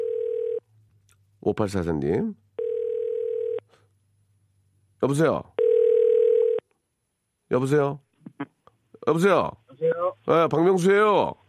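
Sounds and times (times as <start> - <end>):
telephone dial tone while a call is being placed: 0.0 - 0.6, 2.6 - 3.6, 5.6 - 6.6
speech: 1.4 - 2.4, 5.0 - 5.5, 7.5 - 11.4.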